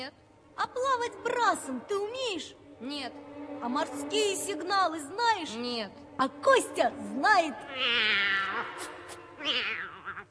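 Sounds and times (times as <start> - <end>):
speech: 0.0 - 9.9
cat meowing: 7.7 - 10.2.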